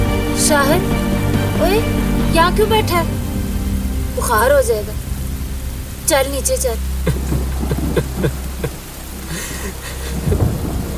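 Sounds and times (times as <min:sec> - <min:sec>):
deep low rumble of thunder: 0:00.0 - 0:10.9
steady rain pouring: 0:00.0 - 0:10.9
speech: 0:00.5 - 0:03.2, 0:04.2 - 0:05.0, 0:06.1 - 0:07.3, 0:08.0 - 0:08.8
laughter: 0:07.1 - 0:10.4.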